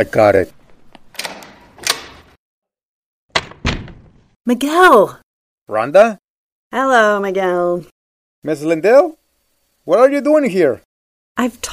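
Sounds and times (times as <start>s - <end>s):
speech: 0.0s - 0.6s, 4.5s - 9.2s, 9.8s - 11.7s
door latch rattling: 1.1s - 2.4s, 3.3s - 4.2s.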